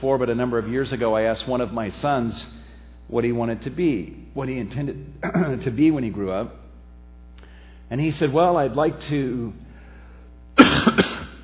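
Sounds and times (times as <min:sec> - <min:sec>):
speech: 0:00.0 - 0:06.6, 0:07.9 - 0:09.6
cough: 0:05.2 - 0:05.6, 0:10.6 - 0:11.4.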